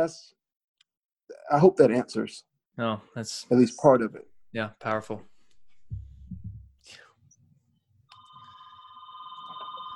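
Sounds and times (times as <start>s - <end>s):
speech: 0.0s - 0.4s, 1.5s - 5.3s
low thumping: 4.2s - 6.8s
landline house phone ringing with an electronic trill: 8.2s - 9.9s.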